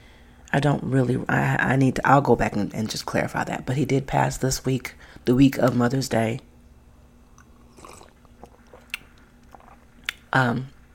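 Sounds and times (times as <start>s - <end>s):
speech: 0.5s - 6.5s, 10.3s - 10.8s
person sipping tea: 7.3s - 10.2s
gulp: 7.4s - 10.2s.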